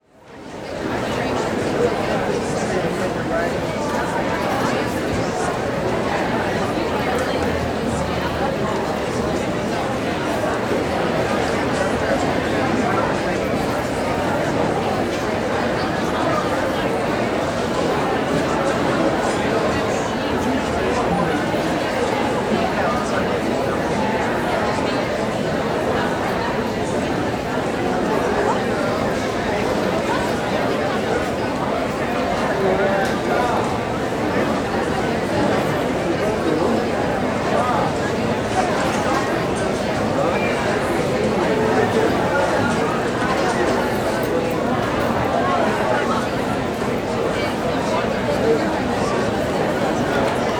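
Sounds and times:
medium crowd walla in a crowded indoor room: 0:00.0 - 0:50.5.

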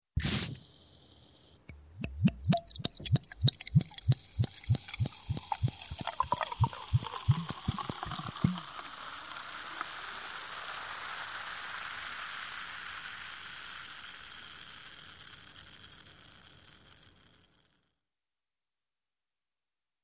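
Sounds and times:
soft drink bottle twist cap opening: 0:01.7 - 0:08.8
soft drink pouring and fizzing: 0:02.0 - 0:15.4.

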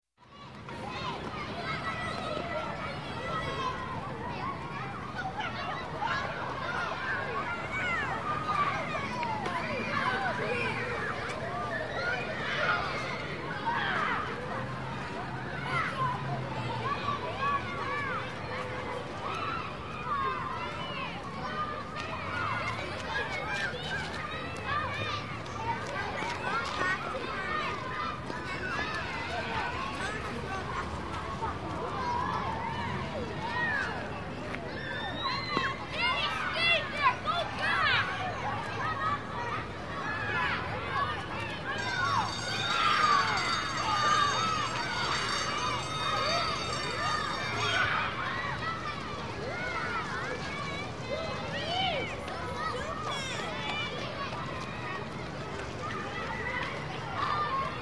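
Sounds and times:
children playing in a schoolyard: 0:00.2 - 0:57.7
recess bell ringing: 0:41.7 - 0:49.0.

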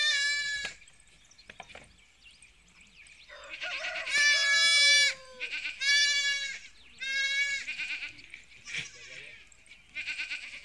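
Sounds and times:
sheep bleating on a farm: 0:04.0 - 0:09.4, 0:10.0 - 0:10.6.

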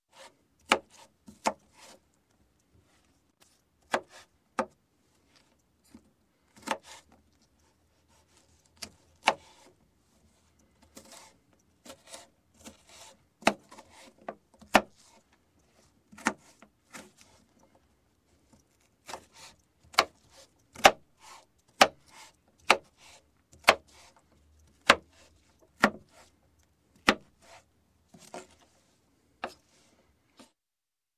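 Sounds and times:
knife slicing vegetables: 0:00.1 - 0:02.0, 0:03.8 - 0:04.3, 0:06.6 - 0:07.1, 0:10.8 - 0:15.2, 0:16.1 - 0:17.5, 0:18.8 - 0:24.2, 0:24.8 - 0:26.3, 0:27.0 - 0:27.6.

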